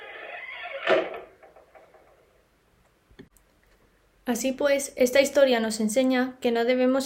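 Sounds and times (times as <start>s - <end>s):
door slamming shut: 0.1s - 2.2s
speech: 4.3s - 7.0s.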